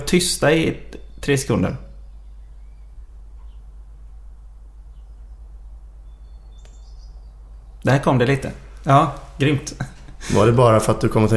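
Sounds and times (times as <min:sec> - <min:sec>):
bird twittering: 0:00.0 - 0:08.8
faint birds chirping: 0:00.0 - 0:11.3
steady low outdoor rumble: 0:00.0 - 0:11.3
speech: 0:00.1 - 0:01.9, 0:07.8 - 0:11.3.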